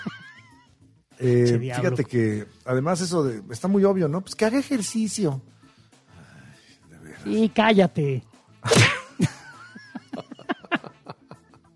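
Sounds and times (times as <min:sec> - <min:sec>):
short snickering laughs: 0:00.0 - 0:00.7, 0:09.0 - 0:11.7
speech: 0:01.2 - 0:05.6, 0:07.2 - 0:08.8
slap across the face: 0:08.7 - 0:09.1.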